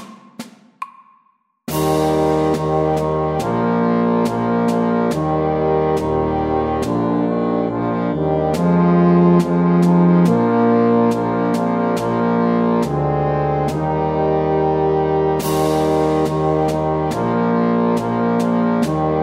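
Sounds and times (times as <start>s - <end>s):
slow march music: 1.7s - 19.2s.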